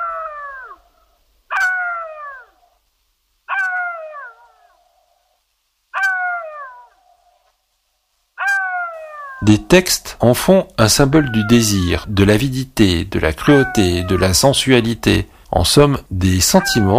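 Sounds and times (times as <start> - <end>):
jackal howling: 0.0 - 2.8, 3.5 - 5.1, 6.0 - 7.3, 8.4 - 9.5, 11.0 - 12.1, 13.4 - 14.5, 16.5 - 16.9
speech: 9.4 - 16.9.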